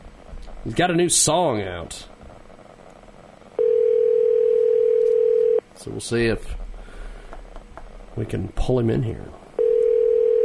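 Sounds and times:
speech: 0.6 - 2.1, 5.8 - 6.6, 8.2 - 9.4
telephone dial tone on a Skype call: 3.6 - 5.6, 9.6 - 10.4.

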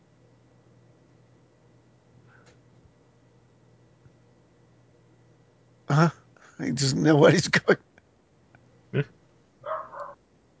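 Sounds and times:
faint hum: 0.0 - 10.5
speech: 5.9 - 7.9, 8.9 - 9.2
dog barking: 9.6 - 10.2.

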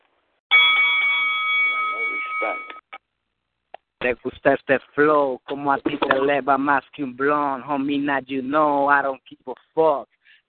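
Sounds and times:
bell ringing to start a round in a rap battle: 0.5 - 2.9
speech: 2.4 - 2.8, 4.0 - 10.2.

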